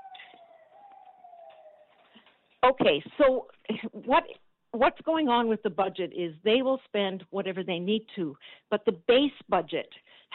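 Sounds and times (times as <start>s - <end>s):
ambulance siren passing by: 0.0s - 2.3s
speech: 2.6s - 10.3s.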